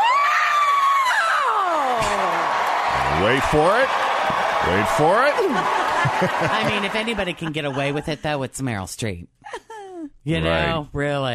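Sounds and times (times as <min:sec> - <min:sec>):
woman screaming excitedly: 0:00.0 - 0:02.4
speech: 0:03.2 - 0:09.6, 0:10.2 - 0:11.3
laughter: 0:04.7 - 0:08.3.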